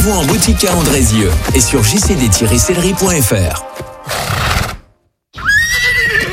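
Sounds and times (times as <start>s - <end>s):
speech: 0.1s - 4.3s
horse neighing: 4.0s - 4.8s, 5.4s - 6.3s.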